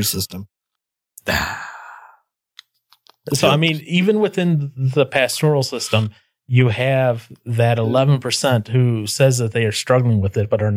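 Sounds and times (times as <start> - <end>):
speech: 0.0 - 0.6, 1.2 - 1.7, 3.2 - 10.7
person yawning: 1.2 - 2.2.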